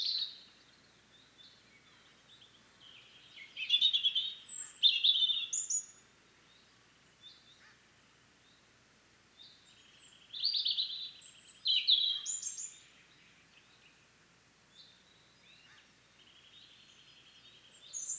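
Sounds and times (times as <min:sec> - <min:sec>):
European robin singing Erithacus rubecula: 0:00.0 - 0:00.5, 0:02.3 - 0:06.0, 0:09.4 - 0:13.2, 0:15.1 - 0:18.1.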